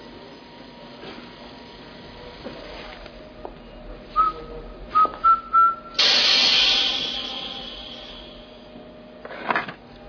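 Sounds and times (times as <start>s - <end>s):
man whistling a tune: 4.2s - 6.0s
loud hissing spray: 6.0s - 8.7s.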